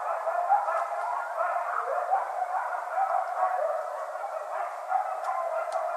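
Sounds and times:
coyotes chorus: 0:00.0 - 0:05.9
faint clicks: 0:05.2 - 0:05.9.

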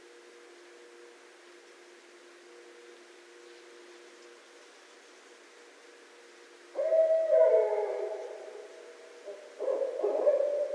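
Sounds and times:
barred owl call: 0:06.8 - 0:10.7.

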